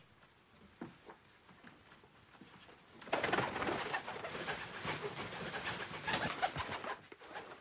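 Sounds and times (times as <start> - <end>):
pigeon flapping its wings indoors in a kitchen: 3.0 - 7.5.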